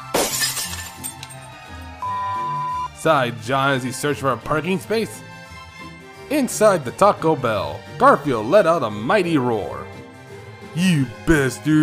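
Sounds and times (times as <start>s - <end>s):
windows of a fast-food restaurant building shattering: 0.0s - 1.5s
tinkling glass fragments: 0.2s - 1.4s
speech: 3.0s - 5.3s, 6.3s - 9.9s, 10.8s - 11.8s.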